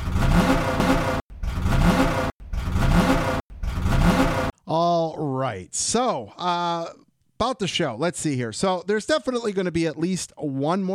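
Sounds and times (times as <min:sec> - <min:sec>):
race car engine revving: 0:00.0 - 0:04.5
speech: 0:04.7 - 0:10.9.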